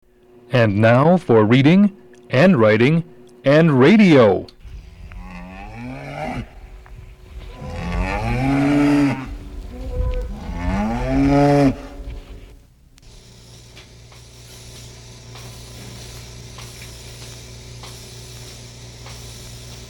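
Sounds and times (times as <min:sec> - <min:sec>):
speech: 0:00.5 - 0:04.6, 0:11.3 - 0:11.8
cows mooing in a cow barn during milking: 0:04.6 - 0:12.6.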